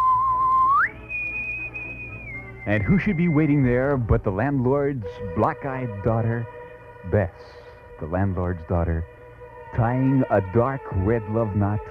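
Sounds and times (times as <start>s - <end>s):
whistled tune: 0.0s - 4.2s
speech: 2.6s - 11.8s.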